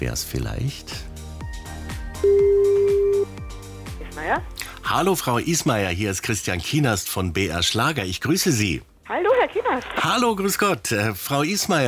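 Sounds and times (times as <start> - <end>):
speech: 0.0 - 1.1, 2.2 - 2.5, 4.2 - 11.8
telephone call ringing tone: 2.2 - 3.3.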